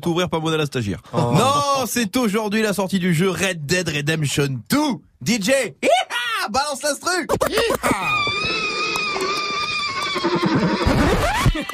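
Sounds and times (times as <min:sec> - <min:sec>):
speech: 0:00.0 - 0:08.8, 0:10.1 - 0:11.7
laughter: 0:07.3 - 0:09.5, 0:10.3 - 0:11.7
horse neighing: 0:07.9 - 0:11.3.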